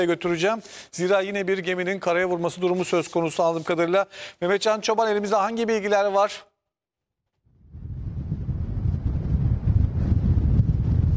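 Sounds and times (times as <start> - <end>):
speech: 0.0 - 6.5
strong wind at the coast roaring across the microphone: 7.5 - 11.1.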